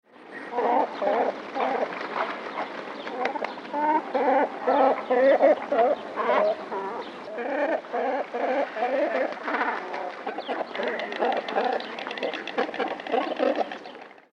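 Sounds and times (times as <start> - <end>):
cormorant making various calls: 0.3 - 14.0.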